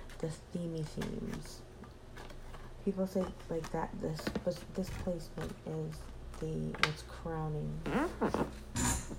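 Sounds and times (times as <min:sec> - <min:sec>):
speech: 0:00.2 - 0:01.7, 0:02.8 - 0:08.9
chair creaking: 0:07.8 - 0:09.1.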